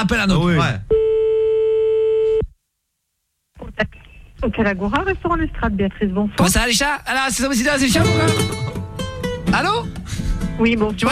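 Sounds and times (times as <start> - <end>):
speech: 0.0 - 1.0, 3.8 - 8.9, 9.5 - 11.0
steady telephone tone after a hung-up call: 0.9 - 2.5.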